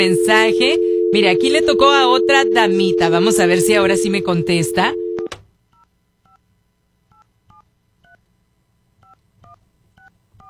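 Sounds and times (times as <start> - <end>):
speech: 0.0 - 5.0
telephone keypad tones as a number is dialed: 0.0 - 5.3
low hum: 0.0 - 10.4.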